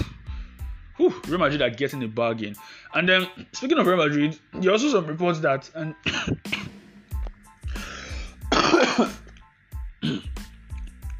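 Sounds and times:
speech: 1.0s - 6.8s, 9.0s - 9.2s
man coughing: 6.0s - 6.8s, 8.4s - 9.3s, 10.0s - 10.4s
man clearing his throat: 6.1s - 6.8s, 8.4s - 9.3s, 10.0s - 10.4s.

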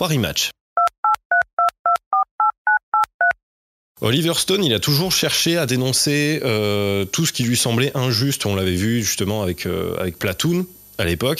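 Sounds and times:
speech: 0.0s - 0.6s, 4.0s - 11.3s
touch-tone phone keypad beeps dialing a number: 0.8s - 3.4s.

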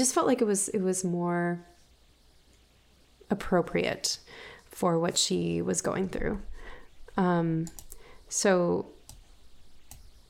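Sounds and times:
speech: 0.0s - 1.8s, 3.3s - 6.6s, 7.2s - 9.0s
computer mouse clicks: 7.6s - 8.0s, 9.0s - 10.1s.

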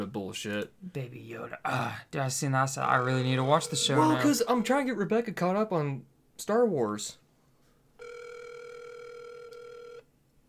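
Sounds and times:
faint hiss: 0.0s - 10.4s
speech: 0.3s - 7.2s
electronic ringback tone from an outgoing phone call: 3.4s - 4.4s, 8.0s - 10.1s.

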